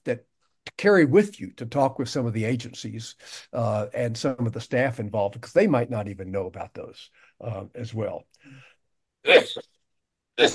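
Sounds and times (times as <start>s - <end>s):
speech: 0.0s - 9.7s, 10.4s - 10.5s
person coughing while speaking at a meeting: 9.3s - 9.6s, 10.4s - 10.5s.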